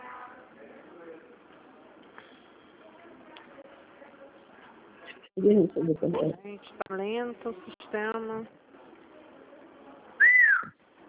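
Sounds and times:
faint noise: 0.0s - 11.0s
speech: 5.4s - 8.6s
parrot whistling: 10.2s - 10.7s.

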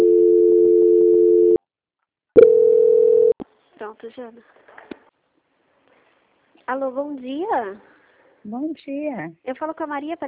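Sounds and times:
telephone call transfer tone on a bank customer-service line: 0.0s - 1.6s, 2.4s - 3.4s
speech: 3.9s - 4.6s, 6.7s - 10.2s.

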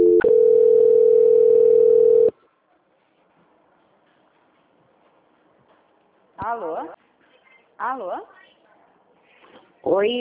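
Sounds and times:
telephone line transfer tone: 0.0s - 2.3s
speech: 9.8s - 10.1s.

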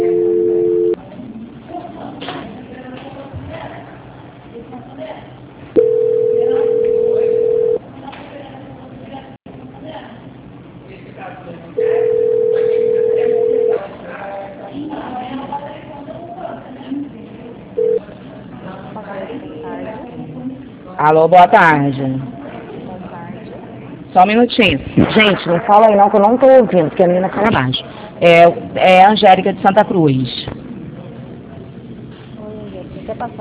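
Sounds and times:
telephone call transfer tone: 0.0s - 1.0s, 5.8s - 7.8s, 11.8s - 13.8s, 17.8s - 18.0s
speech: 21.1s - 22.3s, 24.2s - 30.4s
voices: 24.6s - 28.8s.

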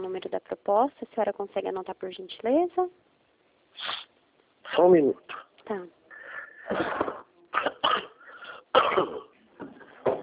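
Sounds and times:
speech: 0.2s - 3.1s, 4.7s - 6.0s, 6.7s - 8.1s, 8.8s - 9.3s
harsh coughs from several people: 6.6s - 9.4s.

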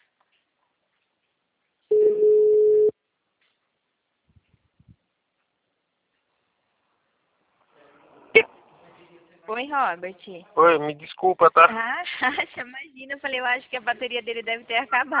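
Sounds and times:
phone line beep as an incoming call connects: 1.9s - 2.9s
speech: 9.5s - 15.1s.

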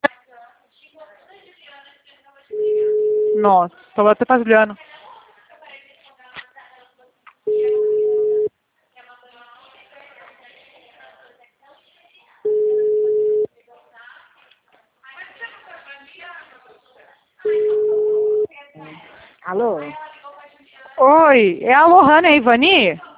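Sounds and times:
telephone busy tone after a dropped call: 2.6s - 3.6s, 7.5s - 8.5s, 12.5s - 13.5s, 17.5s - 18.5s
speech: 3.4s - 4.9s, 21.4s - 23.1s.

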